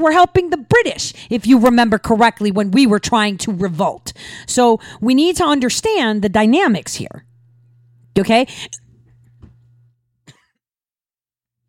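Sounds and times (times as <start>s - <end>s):
speech: 0.0s - 7.3s, 8.2s - 8.8s
steady low hum: 0.6s - 10.4s
harsh coughing: 10.3s - 10.6s.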